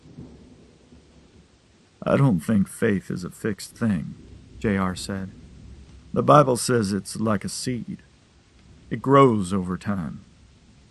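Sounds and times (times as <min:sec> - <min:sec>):
gusts of wind: 0:00.0 - 0:09.3
low rolling thunder during a rainstorm: 0:00.0 - 0:10.8
steady hiss of rain in a storm: 0:00.0 - 0:10.8
speech: 0:02.0 - 0:05.4, 0:06.1 - 0:08.1, 0:08.9 - 0:10.3.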